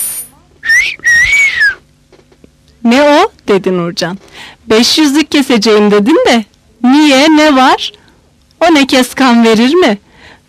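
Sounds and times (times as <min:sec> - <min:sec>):
person whistling a loud two-part phrase: 0:00.6 - 0:01.8
speech: 0:02.8 - 0:08.0, 0:08.6 - 0:10.0.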